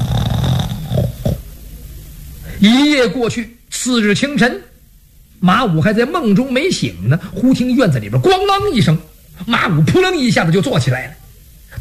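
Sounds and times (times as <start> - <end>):
storyteller's voice imitating a man's loud snoring: 0.0 - 1.5
speech: 2.6 - 4.7, 5.4 - 11.8.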